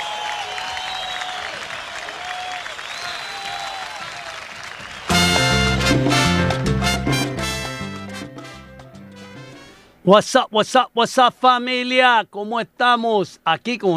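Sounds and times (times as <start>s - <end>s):
crowd whistles and cheers: 0.0s - 5.1s
crowd clapping: 0.0s - 8.0s
loud music: 5.1s - 9.8s
speech: 10.1s - 13.9s.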